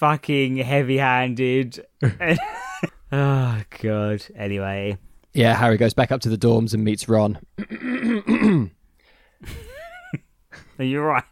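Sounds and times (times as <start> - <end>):
speech: 0.0 - 8.8, 9.4 - 10.2, 10.8 - 11.2
person clearing throat: 7.6 - 8.8.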